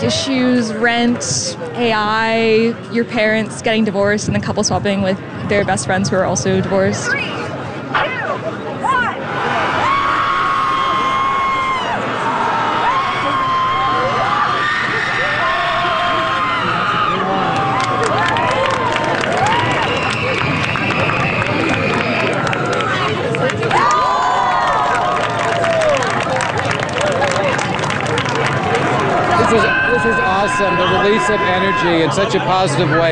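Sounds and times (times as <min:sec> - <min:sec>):
speech: 0:00.0 - 0:08.6, 0:31.2 - 0:33.1
large crowd letting out a group guttural scream: 0:08.8 - 0:27.6, 0:28.3 - 0:33.1.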